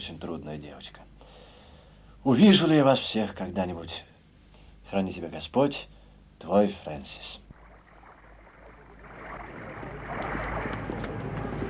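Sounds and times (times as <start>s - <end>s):
speech: 0.0s - 1.1s, 2.2s - 4.1s, 4.9s - 7.4s
boat moving across water with hull noise: 7.5s - 11.6s.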